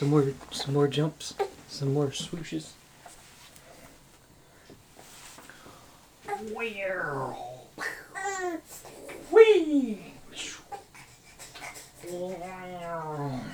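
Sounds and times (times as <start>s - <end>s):
speech: 0.0s - 2.8s, 6.4s - 10.5s, 12.1s - 13.5s
fussy baby whimpering and whining: 6.2s - 9.5s, 10.3s - 13.5s.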